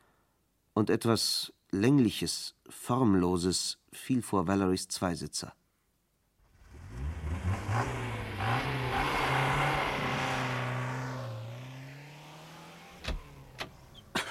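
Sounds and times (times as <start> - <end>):
speech: 0.8 - 5.6
car engine revving hard as it speeds away and stops: 6.5 - 14.1.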